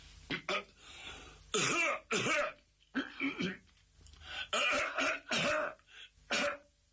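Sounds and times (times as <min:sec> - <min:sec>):
person coughing deliberately to get attention: 0:01.5 - 0:03.7, 0:04.5 - 0:06.7.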